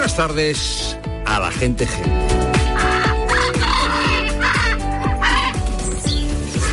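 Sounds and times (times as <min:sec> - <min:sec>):
speech: 0:00.2 - 0:02.3
macaws screeching: 0:02.7 - 0:06.7.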